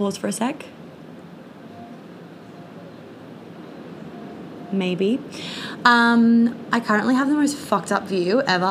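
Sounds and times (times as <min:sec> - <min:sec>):
speech: 0:00.0 - 0:00.8, 0:04.7 - 0:08.7
ocean waves: 0:00.7 - 0:06.8.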